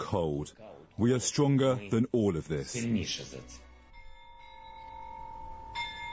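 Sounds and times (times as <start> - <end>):
speech: 0.1 - 3.6
cathedral bells chiming: 3.9 - 6.1.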